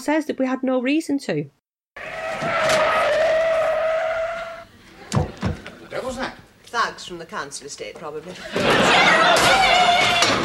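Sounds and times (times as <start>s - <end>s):
speech: 0.0s - 1.6s, 6.8s - 10.4s
car tires screeching to a halt: 2.0s - 4.7s
laughter: 8.4s - 10.4s.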